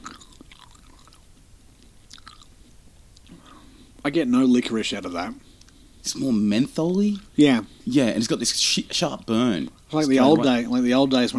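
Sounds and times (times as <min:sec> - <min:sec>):
wet open-mouth chewing of mint gum: 0:00.0 - 0:01.2, 0:01.8 - 0:02.5
speech: 0:04.0 - 0:05.4, 0:06.0 - 0:11.3.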